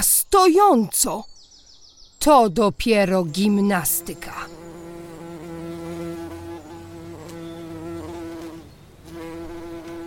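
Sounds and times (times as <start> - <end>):
speech: 0.0 - 1.4, 2.2 - 4.6
bumblebee buzzing: 3.4 - 10.0.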